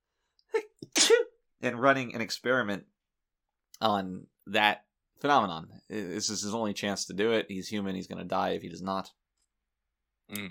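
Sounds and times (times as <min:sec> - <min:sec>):
person sneezing: 0:00.8 - 0:01.3
speech: 0:01.6 - 0:02.9, 0:03.8 - 0:09.2, 0:10.3 - 0:10.4.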